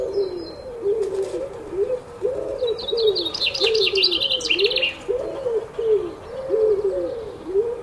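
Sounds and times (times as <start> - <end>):
pigeon cooing in the early morning: 0.0 - 7.8
high songbird twittering: 1.8 - 7.6.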